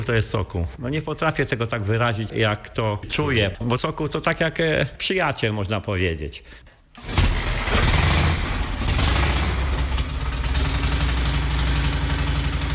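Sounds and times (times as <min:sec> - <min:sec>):
speech: 0:00.0 - 0:07.9
old pre-war Polish-made motorcycle engine starting and running: 0:07.2 - 0:12.7.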